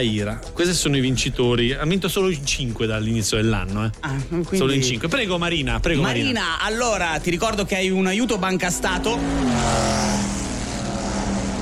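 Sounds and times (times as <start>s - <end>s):
speech: 0.0s - 10.2s
motorcycle engine roaring past: 8.2s - 11.6s.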